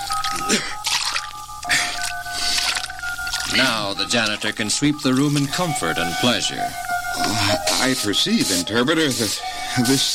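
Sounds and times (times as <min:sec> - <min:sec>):
water sprinkled onto a floor: 0:00.0 - 0:04.4
speech: 0:03.6 - 0:10.1.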